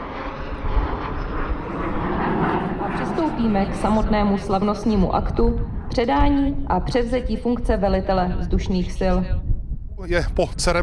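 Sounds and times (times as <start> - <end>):
military transport planes and jets roaring overhead in a flyover: 0.0 - 6.7
speech: 3.4 - 9.4, 10.0 - 10.8.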